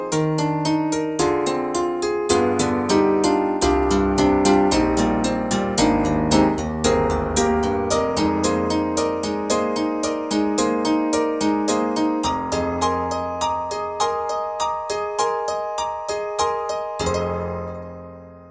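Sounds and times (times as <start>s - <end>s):
tack piano: 0.2s - 18.5s.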